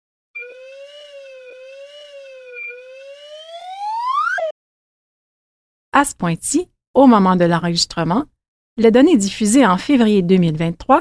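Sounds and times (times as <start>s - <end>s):
slide whistle: 0.4s - 4.6s
speech: 6.0s - 10.9s.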